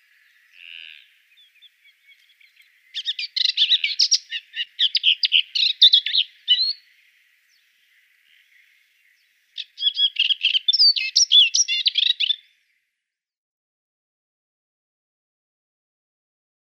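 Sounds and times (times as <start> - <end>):
moustached warbler song: 1.6 - 6.8, 9.6 - 12.4.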